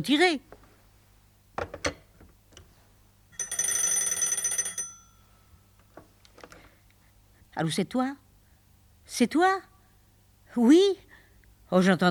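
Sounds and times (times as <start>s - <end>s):
speech: 0.0s - 0.6s, 7.6s - 8.2s, 9.1s - 9.7s, 10.6s - 11.0s, 11.7s - 12.1s
old telephone bell ringing: 3.3s - 5.7s.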